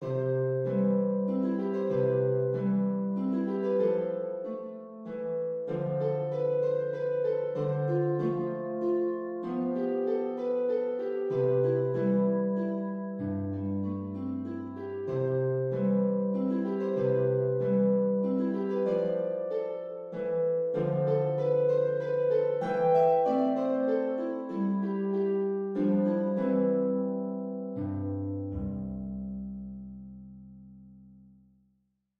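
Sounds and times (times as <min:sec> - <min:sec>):
harp playing a waltz: 0:00.0 - 0:31.1.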